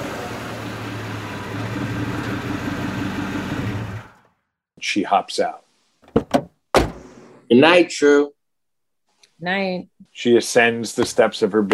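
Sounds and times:
car engine idling outside an apartment building: 0.0 - 4.3
speech: 4.8 - 5.6, 7.5 - 8.4, 9.4 - 11.7.

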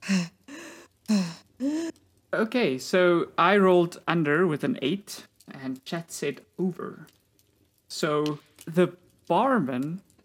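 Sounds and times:
loud deep breaths in a breathing exercise: 0.0 - 1.9
speech: 2.4 - 7.2, 7.9 - 10.1.

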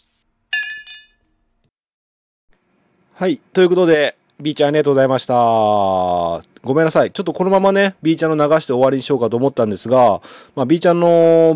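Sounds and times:
glasses of milk clinking in a toast: 0.5 - 1.3
speech: 3.2 - 11.5.

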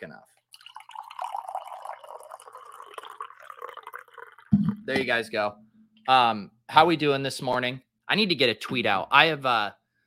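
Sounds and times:
speech: 0.0 - 0.4, 4.5 - 9.8
coffee being poured into a cup: 0.6 - 5.2.

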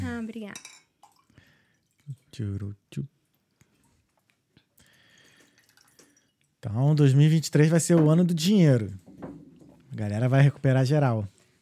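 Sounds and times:
soft room noise: 0.0 - 11.6
speech: 0.2 - 0.7, 2.3 - 3.2, 6.6 - 11.3
water poured into a glass: 1.0 - 2.3, 5.0 - 6.5.

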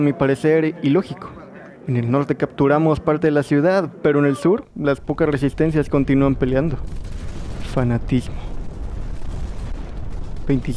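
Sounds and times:
speech: 0.0 - 8.5, 10.5 - 10.7
artillery barrage: 5.6 - 10.7.

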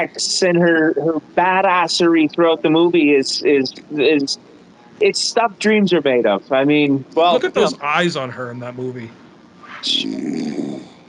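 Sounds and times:
speech: 0.0 - 9.2, 9.8 - 10.9
laughter: 7.3 - 9.0
loud snoring: 10.0 - 11.0.

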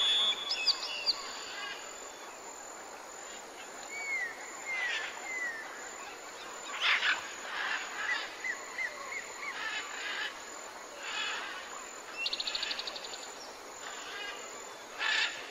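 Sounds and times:
many birds calling with chirps whistles and trills: 0.0 - 1.5
steady hiss of insects in a forest: 0.0 - 15.5.

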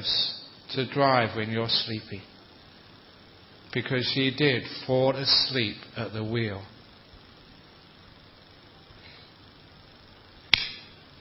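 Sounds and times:
speech: 0.0 - 2.3, 3.7 - 6.8
hand slapping own face: 10.5 - 10.8.

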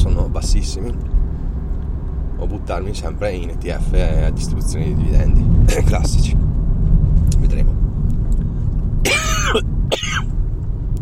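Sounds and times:
low rumble: 0.0 - 11.0
speech: 0.4 - 1.2, 2.4 - 6.6, 9.5 - 10.3
rough raspy coughs: 9.0 - 10.3.

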